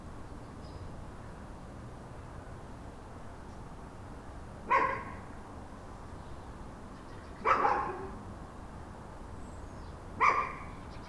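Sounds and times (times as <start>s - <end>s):
dog barking: 4.7s - 5.2s, 7.4s - 8.2s, 10.2s - 10.7s.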